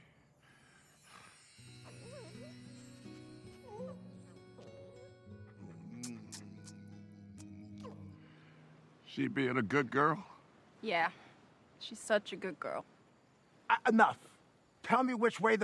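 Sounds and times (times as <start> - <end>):
dog whimpering and yipping in a car: 1.8 - 2.6, 3.5 - 6.5
speech: 9.2 - 11.2, 11.8 - 12.9, 13.8 - 14.3, 14.9 - 15.6.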